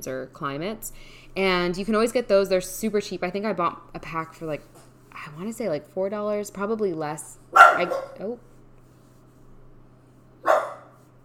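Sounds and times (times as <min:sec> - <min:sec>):
speech: 0:00.0 - 0:08.5
faint steady low hum: 0:00.0 - 0:11.2
dog giving a sharp bark: 0:07.6 - 0:08.2, 0:10.4 - 0:11.0.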